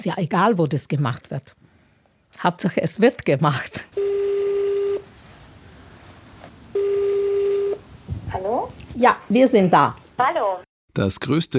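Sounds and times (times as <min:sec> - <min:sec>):
speech: 0:00.0 - 0:01.6, 0:02.4 - 0:04.0, 0:09.0 - 0:11.5
telephone ringback tone while placing a call: 0:04.0 - 0:05.0, 0:06.8 - 0:07.8.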